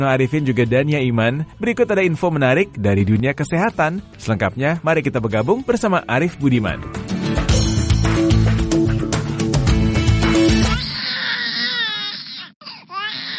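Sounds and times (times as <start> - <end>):
speech: 0.0 - 7.4
busy music: 0.0 - 10.9
baby wailing loudly: 10.4 - 13.3.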